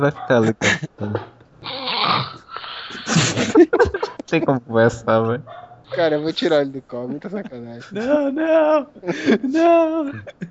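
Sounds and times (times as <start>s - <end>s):
speech: 0.0s - 10.4s
laughter: 0.3s - 1.2s, 2.9s - 4.5s, 5.9s - 10.4s
man snoring loudly over a Skype call: 1.6s - 3.5s.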